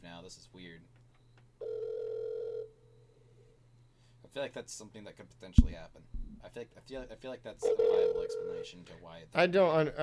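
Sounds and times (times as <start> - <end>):
low hum: 0.0 - 10.0
speech: 0.3 - 1.0, 4.3 - 10.0
electronic ring tone over a phone line: 1.6 - 2.8, 7.6 - 8.8.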